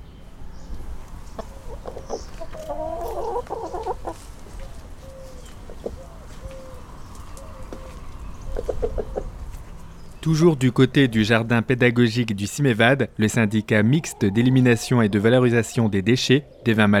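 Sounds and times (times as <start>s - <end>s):
steady outdoor background: 0.0s - 16.9s
hens clucking in an educational garden in Évin-Malmaison France: 1.3s - 9.5s, 13.0s - 16.5s
speech: 10.2s - 16.9s.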